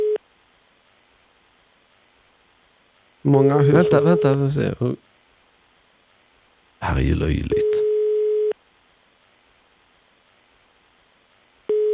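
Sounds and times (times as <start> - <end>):
telephone ringback tone as a call goes unanswered: 0.0 - 0.2, 7.5 - 8.5, 11.7 - 11.9
speech: 3.3 - 5.1, 6.8 - 7.7.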